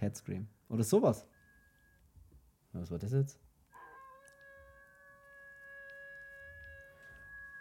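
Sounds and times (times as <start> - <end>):
speech: 0.0 - 1.3, 2.8 - 3.4
spooky Halloween wolf howl sound effect: 3.7 - 7.5.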